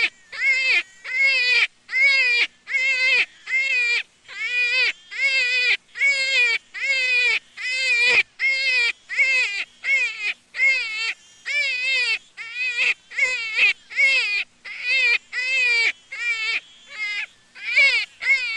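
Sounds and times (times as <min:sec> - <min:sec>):
juvenile jackrabbit crying: 0:00.0 - 0:18.5.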